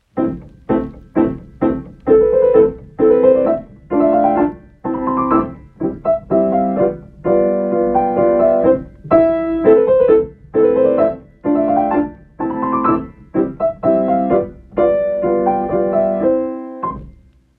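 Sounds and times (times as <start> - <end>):
short classical arabesque piece: 0.0 - 17.4.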